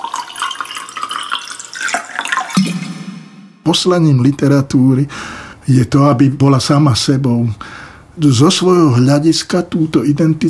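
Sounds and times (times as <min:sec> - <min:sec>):
sparkling mineral water being poured into a glass: 0:00.0 - 0:02.8
speech: 0:03.7 - 0:10.4.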